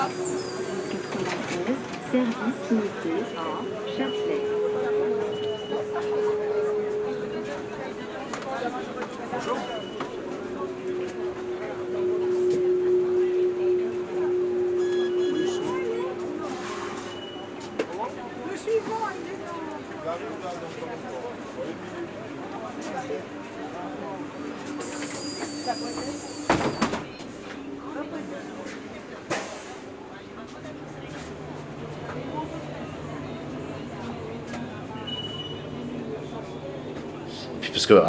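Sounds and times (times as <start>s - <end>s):
busy street background: 0.0s - 38.0s
city bus engine droning: 0.0s - 38.0s
faint indistinct voices: 0.0s - 38.0s
speech: 1.2s - 4.6s, 37.9s - 38.0s.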